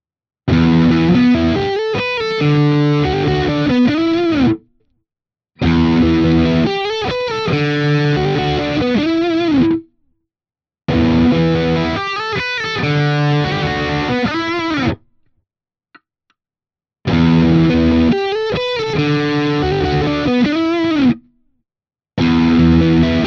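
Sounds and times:
Schecter Exotic Ziricote electric guitar rhythm riff: 0.5s - 4.7s, 5.6s - 10.0s, 10.9s - 15.2s, 17.1s - 21.4s, 22.2s - 23.2s.

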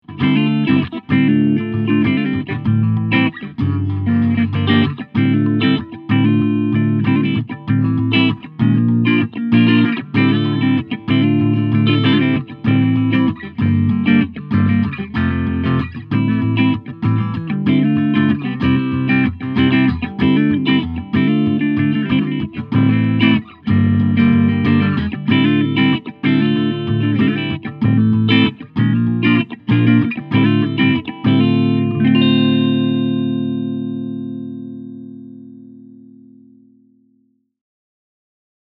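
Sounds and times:
clean electric guitar through a 12-inch combo amp: 0.0s - 37.2s.

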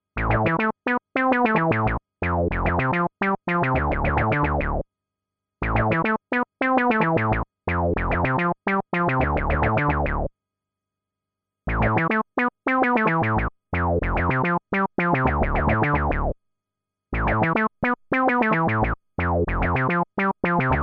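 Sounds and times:
funky bass line: 0.2s - 0.6s, 1.5s - 4.8s, 5.6s - 6.1s, 6.9s - 10.3s, 11.7s - 12.2s, 12.8s - 16.4s, 17.1s - 20.8s.

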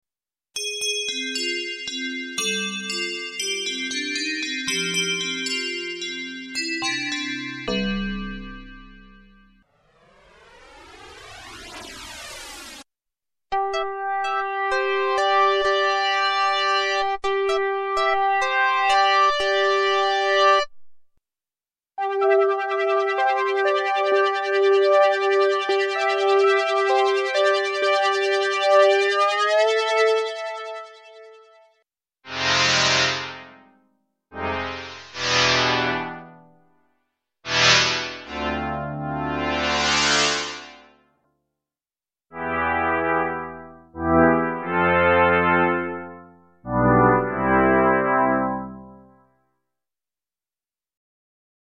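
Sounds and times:
Nord Stage 2 synthesizer: 1.0s - 12.9s, 13.5s - 20.7s, 22.0s - 31.3s, 34.4s - 36.6s, 37.5s - 41.0s, 42.4s - 49.2s.

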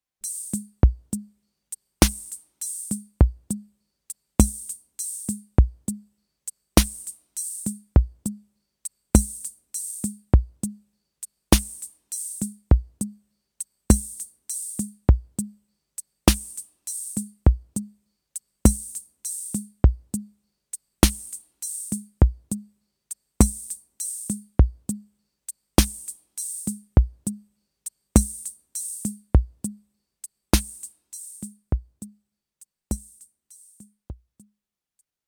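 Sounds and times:
drum machine disco beat: 0.2s - 1.2s, 2.0s - 3.6s, 4.4s - 6.0s, 6.8s - 8.3s, 9.2s - 10.7s, 11.5s - 13.1s, 13.9s - 15.4s, 16.3s - 17.8s, 18.6s - 20.2s, 21.0s - 22.6s, 23.4s - 25.0s, 25.8s - 27.3s, 28.2s - 29.8s, 30.6s - 32.1s, 32.9s - 33.2s
programmed snare drum: 2.0s - 3.6s, 4.4s - 6.0s, 6.8s - 8.3s, 9.2s - 10.7s, 11.5s - 13.1s, 13.9s - 15.4s, 16.3s - 17.9s, 18.6s - 20.2s, 21.0s - 22.6s, 23.4s - 25.0s, 25.8s - 27.4s, 28.2s - 29.8s, 30.6s - 32.1s, 32.9s - 34.4s.

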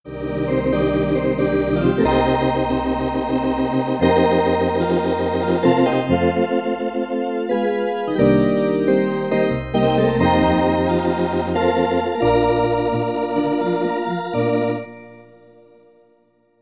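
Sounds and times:
MIDI organ keyboard instrument playing: 0.1s - 15.5s.

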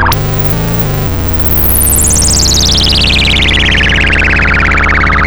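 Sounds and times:
synth bleep with LFO-modulated VCF: 0.1s - 5.2s.

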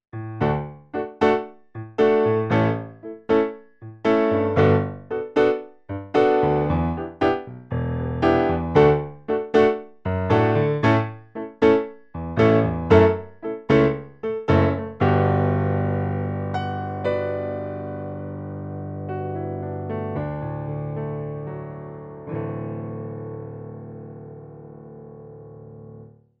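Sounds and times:
bright piano on a Roland HP702 digital piano: 0.1s - 26.3s.

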